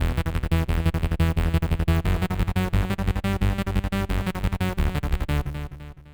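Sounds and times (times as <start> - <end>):
bass arpeggio: 0.0 - 6.1.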